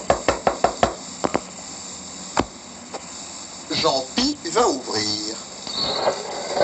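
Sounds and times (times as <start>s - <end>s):
traffic police motorcyclist knocking on a door: 0.1s - 1.5s
speech: 3.8s - 6.6s.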